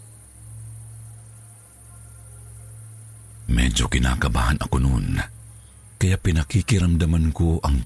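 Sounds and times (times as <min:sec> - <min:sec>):
low hum: 0:00.0 - 0:07.8
night insects chirping outside a house: 0:00.0 - 0:07.8
soft hiss: 0:00.0 - 0:07.8
speech: 0:03.5 - 0:05.4, 0:06.0 - 0:07.8.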